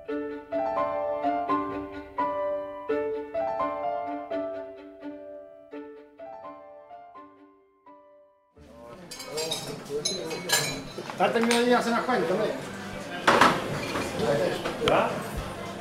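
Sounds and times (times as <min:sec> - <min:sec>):
plucked melodic music: 0:00.0 - 0:10.6
dense crowd chatter in a bar and restaurant in southern Spain: 0:08.6 - 0:15.7
dishes, glasses and cutlery clinking: 0:09.0 - 0:11.8, 0:13.2 - 0:14.8.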